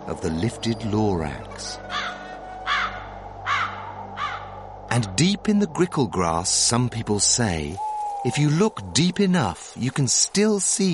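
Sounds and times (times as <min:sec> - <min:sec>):
speech: 0:00.1 - 0:01.9, 0:05.0 - 0:10.9
old crows cawing: 0:01.8 - 0:04.8, 0:07.8 - 0:08.3.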